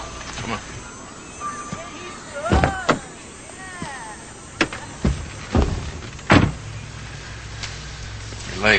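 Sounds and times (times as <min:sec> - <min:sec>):
speech: 0:00.5 - 0:00.7
car door slamming: 0:02.4 - 0:03.0, 0:04.6 - 0:06.7
thumps and clunks from car door and passenger seat: 0:04.6 - 0:06.6.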